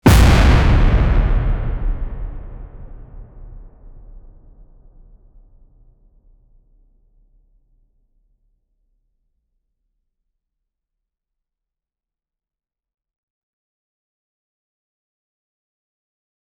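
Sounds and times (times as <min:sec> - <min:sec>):
booming impact: 0:00.0 - 0:05.2.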